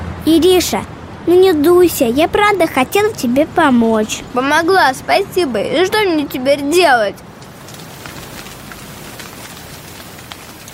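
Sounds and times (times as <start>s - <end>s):
speech: 0.2s - 7.3s
steady rain falling: 1.8s - 10.7s
rain drops pattering on a hard surface: 7.3s - 10.7s.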